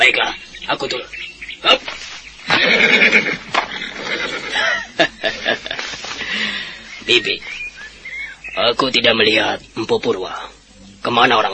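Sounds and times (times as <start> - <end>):
speech: 0.0 - 7.6, 8.6 - 11.5
ridden horse neighing: 2.5 - 4.7
laughter: 2.5 - 6.9.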